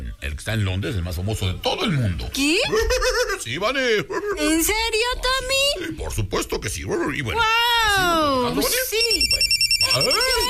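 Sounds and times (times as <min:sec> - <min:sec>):
speech: 0:00.3 - 0:10.4
telephone ringing with a rapid electronic trill: 0:08.7 - 0:10.4.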